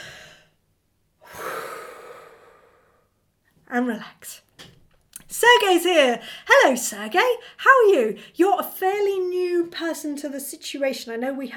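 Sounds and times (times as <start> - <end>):
group of people breathing in together during a relaxation pause: 1.2 - 3.2
speech: 3.8 - 4.5, 5.3 - 11.5.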